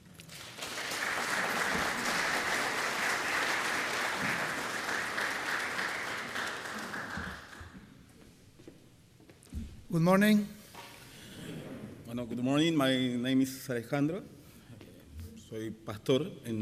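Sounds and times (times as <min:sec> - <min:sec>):
audience applause: 0:00.3 - 0:07.8
speech: 0:09.9 - 0:10.6, 0:12.2 - 0:14.4, 0:15.5 - 0:16.5.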